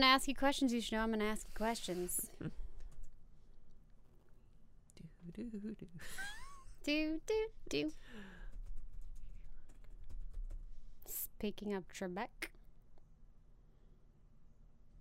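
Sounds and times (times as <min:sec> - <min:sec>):
speech: 0:00.0 - 0:02.6, 0:05.3 - 0:08.4, 0:11.1 - 0:12.5
typing on a computer keyboard: 0:08.4 - 0:10.8.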